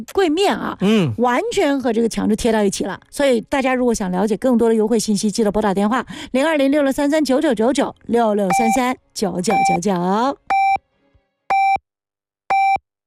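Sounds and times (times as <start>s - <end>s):
speech: 0.0s - 10.5s
radio hourly time signal beeps: 8.5s - 8.8s, 9.5s - 9.8s, 10.5s - 10.8s, 11.5s - 11.8s, 12.5s - 12.8s.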